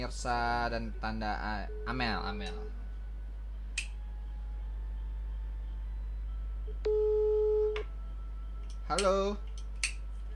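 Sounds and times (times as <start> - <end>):
speech: 0.0 - 2.8, 8.9 - 9.5
faint hum: 0.0 - 10.3
steady electronic telephone redial tone after dropped call: 6.7 - 7.9.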